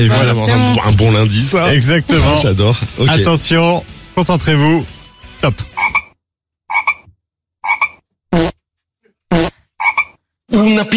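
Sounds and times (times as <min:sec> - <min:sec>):
speech: 0:00.0 - 0:05.7, 0:10.6 - 0:10.9
toads croaking: 0:05.8 - 0:08.5, 0:09.3 - 0:10.2.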